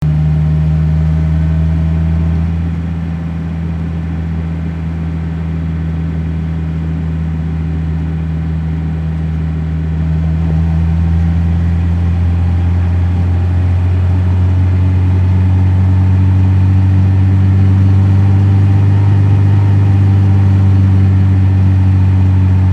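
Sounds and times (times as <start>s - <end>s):
car ride: 0.0s - 22.7s.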